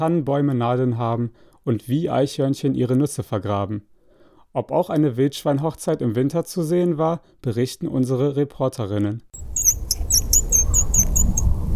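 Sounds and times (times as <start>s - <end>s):
speech: 0.0s - 3.9s, 4.5s - 9.4s
homemade wildlife lure call chirping to attract robins: 9.4s - 11.6s
steady low rumble: 9.4s - 11.7s.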